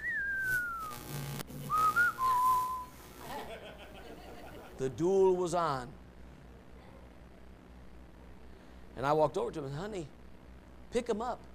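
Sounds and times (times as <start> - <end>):
person whistling a western standoff tune: 0.0 - 0.9, 1.7 - 2.9
faint low hum: 0.0 - 11.5
laughter: 3.2 - 4.9
speech: 4.8 - 6.0, 9.0 - 10.2, 10.9 - 11.5.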